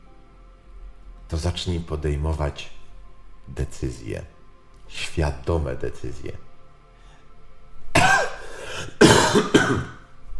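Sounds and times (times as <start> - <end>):
speech: 1.3 - 2.8, 3.5 - 6.5
wet phlegmy cough: 8.0 - 10.0.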